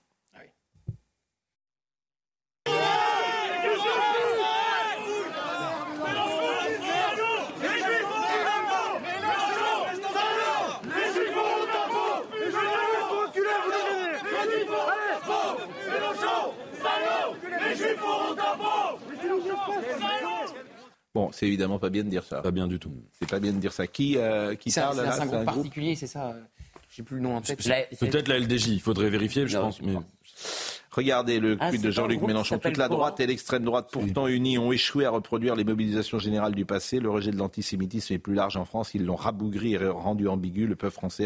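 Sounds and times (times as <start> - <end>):
large crowd chanting a name in unison: 2.7 - 21.0
speech: 21.3 - 41.2.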